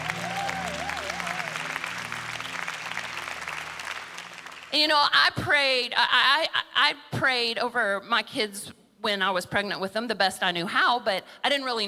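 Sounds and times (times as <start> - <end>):
large audience clapping: 0.0 - 4.8
speech: 4.7 - 11.8.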